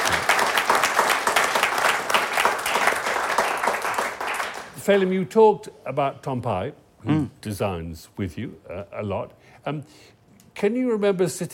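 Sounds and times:
room full of people clapping: 0.0s - 4.8s
speech: 4.8s - 11.5s.

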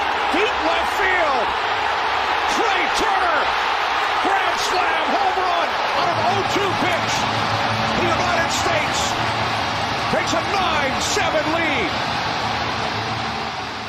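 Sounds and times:
packed stadium crowd roaring after a grand slam: 0.0s - 13.8s.

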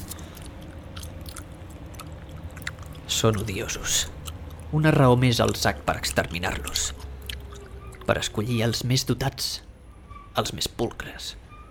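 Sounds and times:
gum chewing: 0.0s - 8.1s
low steady rumble: 0.0s - 10.1s
speech: 3.2s - 7.0s, 8.1s - 9.7s, 10.4s - 11.4s.

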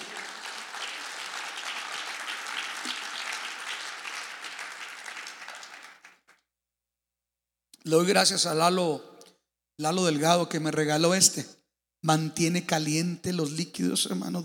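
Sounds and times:
church audience applauding: 0.0s - 6.4s
speech: 7.9s - 9.1s, 9.8s - 14.4s.

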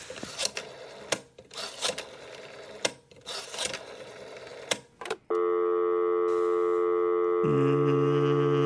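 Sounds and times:
old rotary dial phone dial whirring and clicking: 0.2s - 5.2s
steady electronic phone tone: 5.3s - 8.6s.

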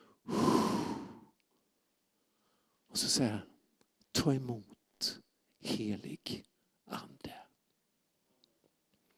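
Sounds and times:
person forcefully exhaling through the mouth imitating breathing onto others: 0.3s - 1.3s
speech: 3.0s - 3.5s, 4.1s - 7.4s.

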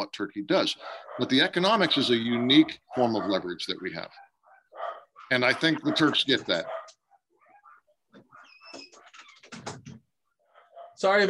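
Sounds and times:
speech: 0.1s - 4.3s, 5.3s - 7.0s, 11.0s - 11.2s
dogs barking and yelping: 0.6s - 11.1s.

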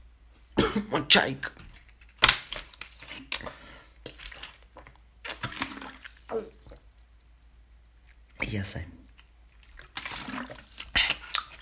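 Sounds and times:
speech: 0.8s - 1.6s, 6.3s - 6.6s, 8.5s - 9.0s
plastic bottle being squeezed: 1.6s - 6.8s, 9.2s - 11.5s
person gulping water: 3.1s - 7.0s, 9.0s - 11.5s.

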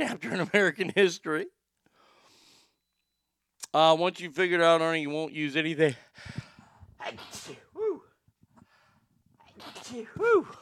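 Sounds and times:
speech: 0.0s - 1.6s, 3.7s - 6.4s, 7.0s - 7.6s, 9.6s - 10.6s
person sneezing loudly with a voiced cry: 7.0s - 8.0s, 9.4s - 10.6s.

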